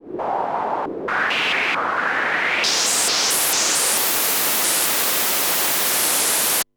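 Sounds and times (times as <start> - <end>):
Yamaha CS5 filtered noise hiss and crackle: 0.0 - 6.7.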